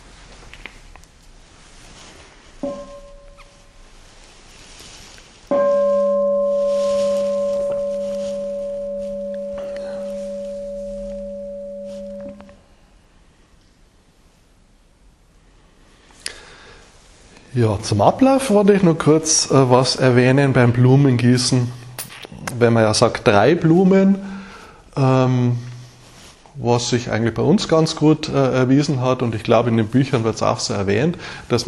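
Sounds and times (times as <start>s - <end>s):
bell ringing with a pure humming tone: 2.6s - 3.6s, 5.5s - 12.6s
speech: 17.6s - 21.8s, 22.6s - 24.3s, 25.0s - 25.7s, 26.6s - 31.6s.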